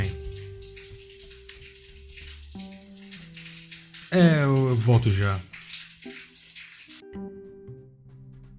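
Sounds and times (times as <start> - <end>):
steady dense falling rain: 0.0 - 7.0
speech: 4.1 - 5.5.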